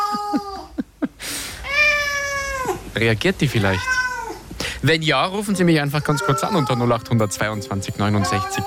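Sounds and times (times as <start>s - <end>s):
cat meowing: 1.6s - 2.8s, 3.6s - 4.5s, 6.0s - 7.0s, 8.2s - 8.6s
speech: 3.0s - 4.0s, 4.8s - 8.6s.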